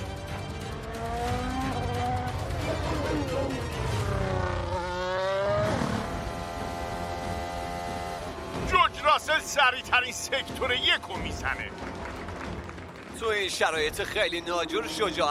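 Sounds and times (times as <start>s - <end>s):
race car engine passing on a wet track: 0.6s - 12.1s
speech: 9.4s - 12.1s, 13.2s - 15.3s.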